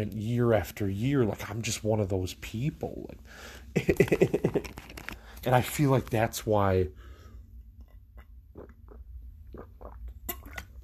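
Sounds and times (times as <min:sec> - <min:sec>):
speech: 0:00.0 - 0:07.0
low steady hum: 0:00.0 - 0:10.8
person sipping a drink close to the mic: 0:08.0 - 0:10.8
soft wet mouth clicks and swallows: 0:08.2 - 0:10.8
sharper slurping bursts: 0:08.5 - 0:10.8.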